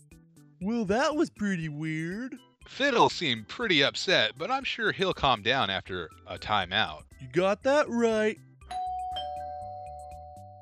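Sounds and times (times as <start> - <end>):
speech: 0.6 - 8.5
doorbell chime ringing: 8.7 - 10.6.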